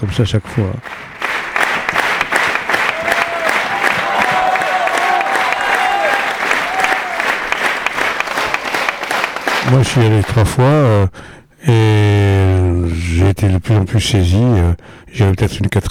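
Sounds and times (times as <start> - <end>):
speech: 0.0 - 1.2, 9.7 - 12.3, 12.9 - 15.8
theatre audience clapping in a standing ovation: 0.1 - 11.0
voices calling out in a theatre audience: 1.1 - 10.4.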